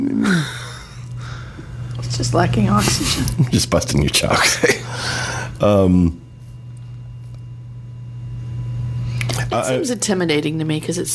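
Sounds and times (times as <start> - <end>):
man yawning: 0.2 - 1.0
speech: 2.2 - 6.2, 9.6 - 11.1.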